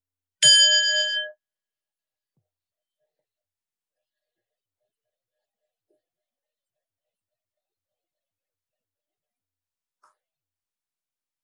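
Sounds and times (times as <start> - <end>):
meditation bell ringing: 0.4 - 1.4.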